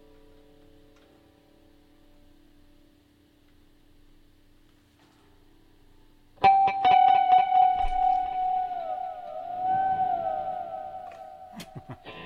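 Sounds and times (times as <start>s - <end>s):
electric guitar with tremolo unit played with heavy tremolo-bar bends: 6.4s - 12.2s.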